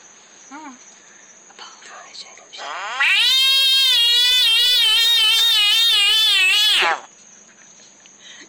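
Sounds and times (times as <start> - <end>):
frog screaming: 2.6 - 7.1.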